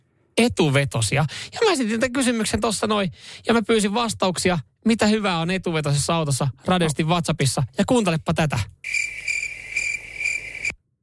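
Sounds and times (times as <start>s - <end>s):
speech: 0.4s - 9.0s
grasshoppers chirping: 8.8s - 10.8s.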